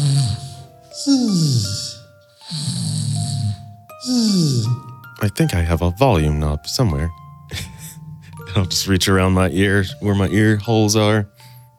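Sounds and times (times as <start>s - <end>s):
man snoring: 0.0s - 4.9s
speech: 1.0s - 1.8s, 5.3s - 7.7s, 8.6s - 11.4s.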